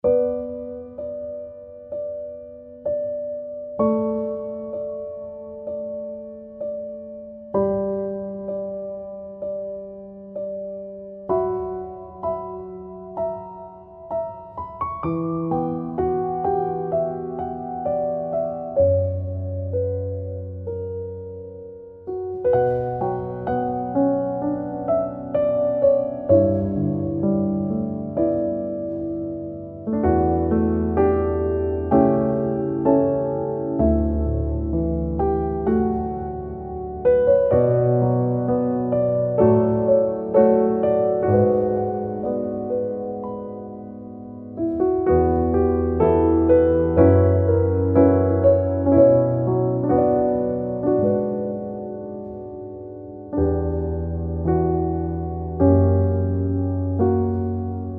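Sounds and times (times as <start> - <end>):
sad piano music: 0.0 - 57.9.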